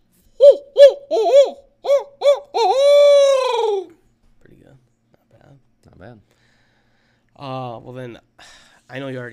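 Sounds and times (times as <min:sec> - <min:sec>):
owl hooting: 0:00.4 - 0:04.0.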